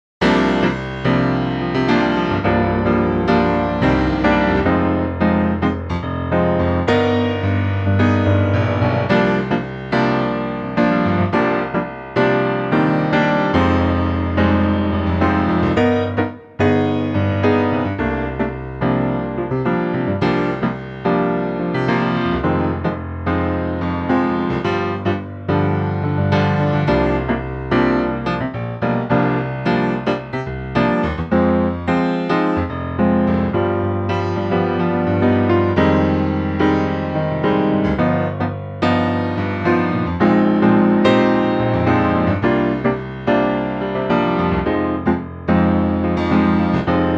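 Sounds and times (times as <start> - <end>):
piano chords: 0.2 - 47.1.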